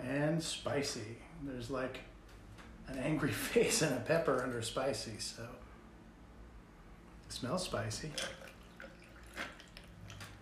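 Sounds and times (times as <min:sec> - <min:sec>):
speech: 0:00.1 - 0:02.1, 0:02.9 - 0:05.7, 0:07.3 - 0:08.5
drink poured over ice: 0:08.1 - 0:10.4.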